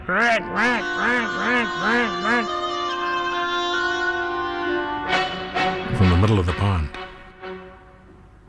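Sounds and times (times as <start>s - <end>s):
duck quacking angrily: 0.0s - 4.7s
steady sustained tone: 0.0s - 6.1s
speech: 0.1s - 2.6s, 6.0s - 7.1s.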